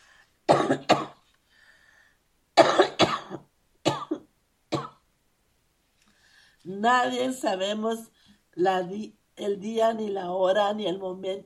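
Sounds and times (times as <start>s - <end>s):
dry coughing from a parched throat: 0.5s - 1.2s, 2.6s - 5.0s
speech: 0.6s - 1.0s, 6.7s - 11.4s.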